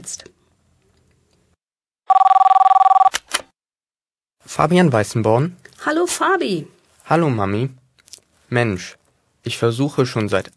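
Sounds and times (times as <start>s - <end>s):
speech: 0.1s - 0.4s, 4.6s - 7.8s, 8.5s - 10.5s
telephone bell ringing: 2.1s - 3.1s.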